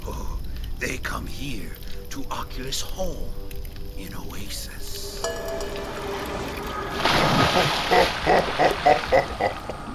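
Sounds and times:
speech: 0:00.8 - 0:05.9, 0:07.2 - 0:09.8
water splashing from swimming strokes: 0:05.5 - 0:09.9.

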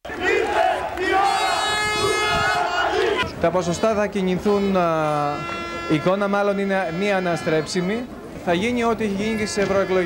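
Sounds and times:
crowd of voters cheering at election rally: 0:00.0 - 0:03.3
speech: 0:03.4 - 0:10.0.

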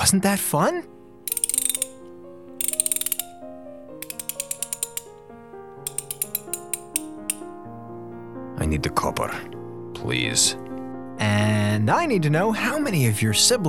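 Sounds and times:
speech: 0:00.0 - 0:01.0, 0:08.7 - 0:13.6
socket wrench ratcheting: 0:01.3 - 0:03.4, 0:04.0 - 0:05.2, 0:05.8 - 0:07.5.

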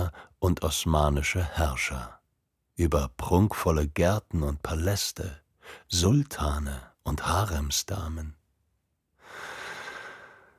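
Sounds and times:
speech: 0:00.4 - 0:02.2, 0:02.8 - 0:08.4
deep inhale through the nose: 0:09.2 - 0:10.5.

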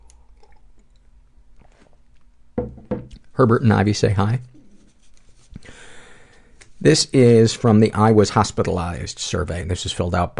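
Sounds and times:
person sipping a hot drink: 0:00.0 - 0:02.0
cup knock: 0:02.6 - 0:03.2
speech: 0:03.4 - 0:04.5, 0:06.8 - 0:10.3.

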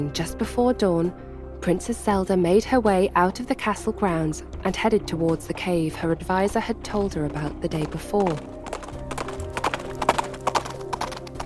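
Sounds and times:
speech: 0:00.0 - 0:08.6
horse hooves clip-clopping at a walking pace: 0:04.6 - 0:11.4.

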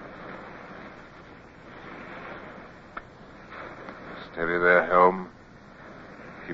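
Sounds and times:
surf swelling and washing in on a tropical beach: 0:00.0 - 0:06.5
speech: 0:04.4 - 0:05.3.

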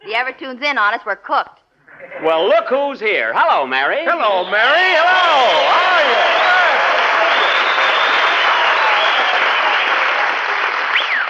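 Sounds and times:
speech: 0:00.1 - 0:06.3
studio audience clapping: 0:04.2 - 0:11.2
rising whistle: 0:04.3 - 0:09.9, 0:10.9 - 0:11.2.

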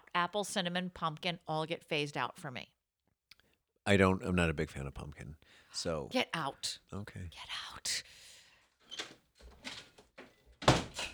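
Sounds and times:
speech: 0:00.2 - 0:02.8, 0:03.9 - 0:08.2
back door of a home opening: 0:08.8 - 0:11.1.

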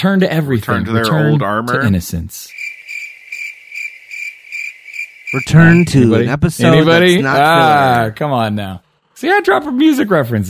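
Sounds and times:
speech: 0:00.0 - 0:02.6, 0:05.3 - 0:10.4
crickets chirping: 0:02.5 - 0:06.0.

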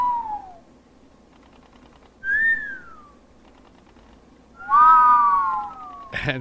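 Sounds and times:
people whistling at each other: 0:02.2 - 0:03.1, 0:04.6 - 0:06.0.

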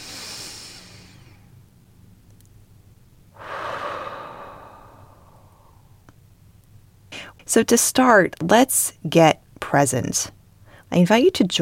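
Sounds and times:
breathy exhale: 0:00.0 - 0:01.4, 0:03.4 - 0:06.0
person inhaling deeply: 0:00.0 - 0:01.4, 0:03.4 - 0:06.0
speech: 0:07.5 - 0:11.6.

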